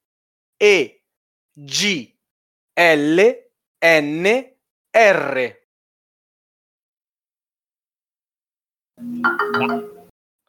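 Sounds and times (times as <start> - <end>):
speech: 0.6 - 1.0, 1.6 - 2.1, 2.8 - 5.6, 9.0 - 10.0
phone text message notification chime: 9.0 - 10.1.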